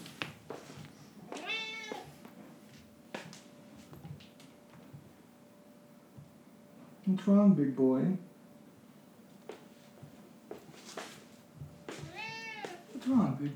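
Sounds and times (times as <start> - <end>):
shuffling: 0.0 - 5.1, 9.3 - 13.5
cat meowing: 1.2 - 2.2, 12.0 - 13.0
speech: 7.1 - 8.3.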